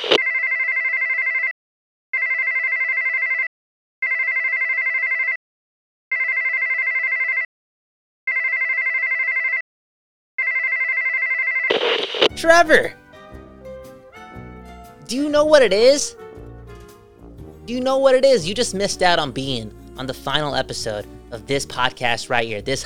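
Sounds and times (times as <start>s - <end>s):
phone ringback tone during an outgoing call: 0.0s - 1.5s, 2.2s - 5.4s, 6.1s - 7.5s, 8.3s - 9.6s, 10.4s - 12.4s
speech: 12.4s - 13.0s, 15.1s - 16.2s, 17.7s - 22.8s.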